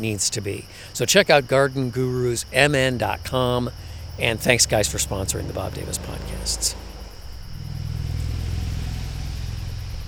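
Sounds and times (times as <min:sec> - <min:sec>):
speech: 0:00.0 - 0:06.8
traffic on a highway with low engine rumble: 0:00.0 - 0:10.0.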